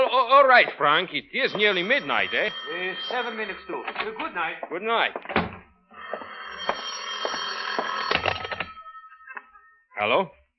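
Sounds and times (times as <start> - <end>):
speech: 0.3 - 5.4, 10.0 - 10.4
telephone bell ringing: 1.4 - 4.6, 5.8 - 9.8.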